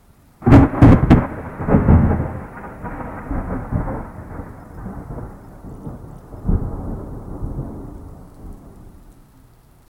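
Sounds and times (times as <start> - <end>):
thunder strikes: 0.4 - 9.1.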